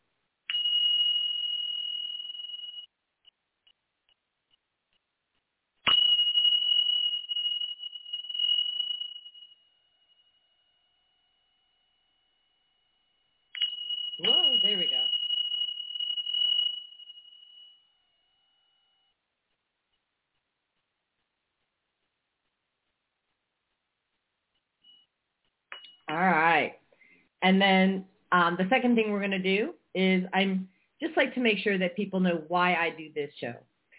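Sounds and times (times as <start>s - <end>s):
Tibetan bells struck: 0.5s - 2.9s, 5.9s - 9.5s, 13.6s - 17.8s
speech: 26.1s - 26.8s, 27.4s - 33.7s.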